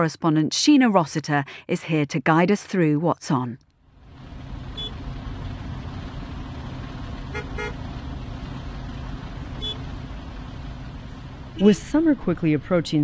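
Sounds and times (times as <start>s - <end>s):
speech: 0.0s - 3.6s, 11.6s - 13.0s
city street traffic inching along in Rio de Janeiro Brazil: 3.9s - 13.0s
car horn honking in Rio de Janeiro Brazil: 4.7s - 5.0s, 7.2s - 8.0s, 9.4s - 9.9s.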